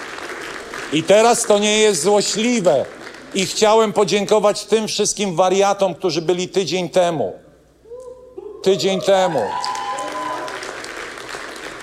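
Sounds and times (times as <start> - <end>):
audience applause: 0.0 - 3.8, 9.2 - 11.8
speech: 0.9 - 7.4, 8.6 - 9.7.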